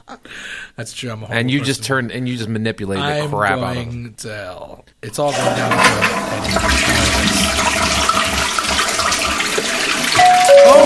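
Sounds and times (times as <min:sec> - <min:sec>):
speech: 0:00.8 - 0:07.9
toilet flushing: 0:05.2 - 0:10.8
bell-like two-note chime: 0:10.2 - 0:10.8.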